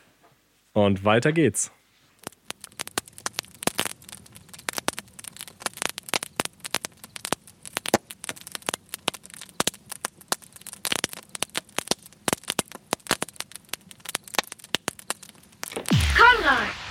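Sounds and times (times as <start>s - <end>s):
low steady hiss of campfire: 0.0s - 16.8s
speech: 0.8s - 1.8s
wood crackling and popping in a campfire after grilling: 1.9s - 16.8s.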